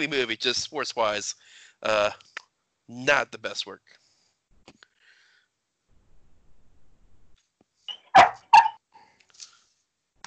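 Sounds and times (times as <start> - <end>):
speech: 0.0 - 2.3, 2.9 - 4.0
faint small noises: 0.0 - 10.2
dog barking: 7.9 - 8.8.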